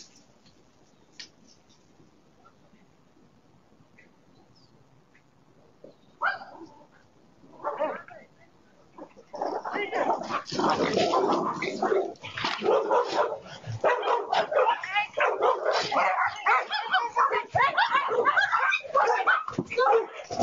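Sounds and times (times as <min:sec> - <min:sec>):
several dogs barking and yipping excitedly: 0:06.2 - 0:06.9, 0:09.0 - 0:20.4.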